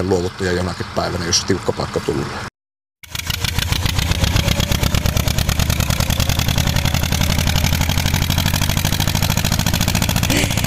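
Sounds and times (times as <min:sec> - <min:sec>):
speech: 0:00.0 - 0:02.5
tractor engine chugging in Kannonkoski: 0:03.0 - 0:10.6.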